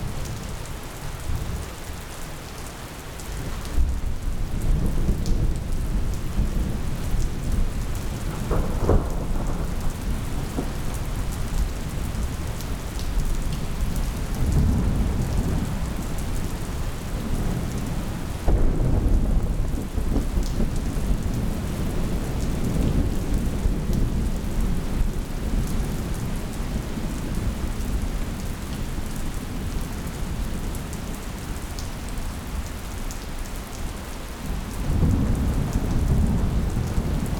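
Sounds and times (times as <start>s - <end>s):
steady heavy monsoon rain: 0.0s - 37.3s
deep rolling monsoon thunder: 4.5s - 12.4s, 14.3s - 16.2s, 17.2s - 24.9s, 34.8s - 37.3s.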